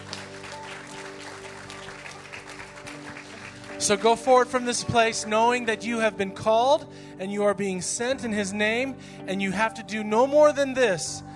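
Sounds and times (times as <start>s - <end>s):
audience applause: 0.0s - 4.7s
speech: 3.8s - 11.3s.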